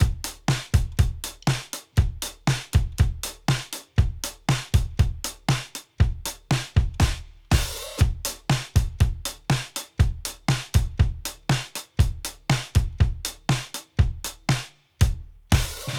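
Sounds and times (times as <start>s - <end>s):
drum loop: 0.0s - 15.9s.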